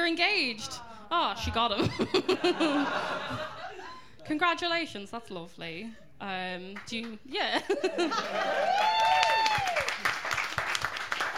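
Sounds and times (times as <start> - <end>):
speech: 0.1 - 3.6, 4.2 - 9.2
laughter: 1.7 - 4.0, 7.6 - 8.8
audience applause: 8.1 - 11.3
person whooping: 8.4 - 9.9.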